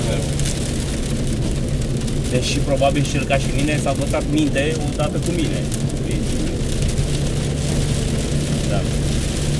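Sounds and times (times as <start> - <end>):
low rumbling background: 0.0 - 9.5
steady rain falling: 0.0 - 9.5
speech: 2.3 - 6.2, 8.7 - 9.4.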